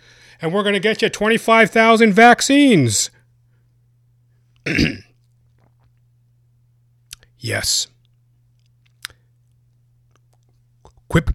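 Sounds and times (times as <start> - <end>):
faint low hum: 0.0 - 11.3
speech: 0.4 - 3.2, 4.7 - 5.0, 7.4 - 7.9, 11.1 - 11.3
wet mouth click: 7.1 - 7.3, 8.9 - 9.2.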